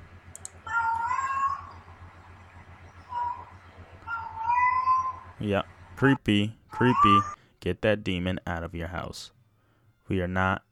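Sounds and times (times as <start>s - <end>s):
steady low hum: 0.0s - 10.2s
cat meowing in video playback: 0.7s - 1.7s, 3.1s - 5.3s
speech: 5.4s - 9.4s, 10.1s - 10.7s.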